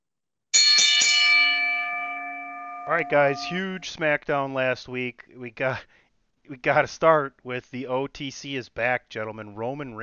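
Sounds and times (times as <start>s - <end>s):
bright metallic bell struck: 0.6s - 3.8s
speech: 2.9s - 10.0s.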